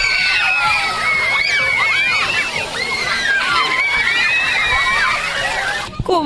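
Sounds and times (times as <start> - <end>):
water fountain spray splashing: 0.0 - 6.0
children shrieking and shouting in a water fountain: 0.0 - 6.1.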